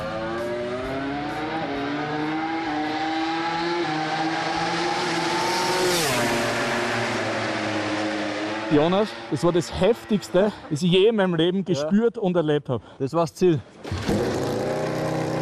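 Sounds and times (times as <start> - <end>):
modified two-seat racing motorcycle at full throttle on a race track: 0.0 - 10.7, 13.9 - 15.4
speech: 8.7 - 13.7.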